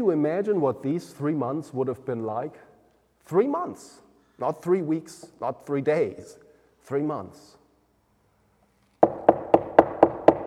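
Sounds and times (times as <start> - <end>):
speech: 0.0 - 7.6
firm knocking on a wooden door: 9.0 - 10.4.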